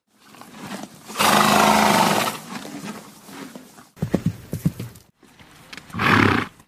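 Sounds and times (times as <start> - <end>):
horse: 0.2 - 6.6.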